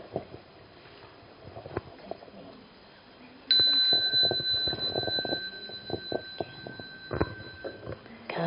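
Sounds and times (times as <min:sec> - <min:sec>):
bell struck to start session: 0:03.5 - 0:08.0.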